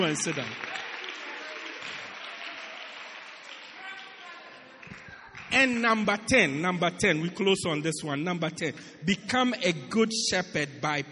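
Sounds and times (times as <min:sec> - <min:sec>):
speech: 0:00.0 - 0:00.8, 0:05.5 - 0:11.1
audience applause: 0:00.0 - 0:05.9.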